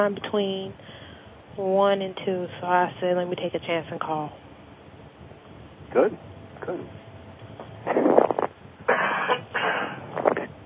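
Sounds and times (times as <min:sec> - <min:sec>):
speech: 0:00.0 - 0:00.9, 0:01.6 - 0:04.4, 0:05.9 - 0:07.0
stifled cough heard through a phone-like line: 0:08.9 - 0:10.5.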